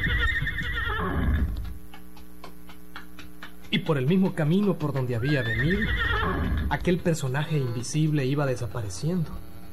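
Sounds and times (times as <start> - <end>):
horse whinnying: 0.0 - 1.6, 5.2 - 6.8
speech: 3.8 - 9.4.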